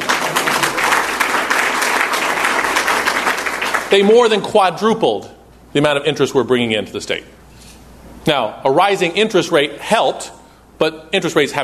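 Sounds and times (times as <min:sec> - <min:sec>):
audience clapping at a speech event: 0:00.0 - 0:04.1
speech: 0:03.9 - 0:07.4, 0:08.2 - 0:11.6.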